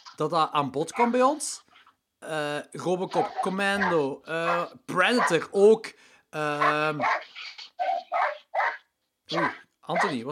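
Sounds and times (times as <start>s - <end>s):
speech: 0.2s - 7.2s, 9.3s - 10.2s
dogs barking while playing outside: 0.9s - 1.4s, 3.1s - 5.5s, 6.6s - 10.2s.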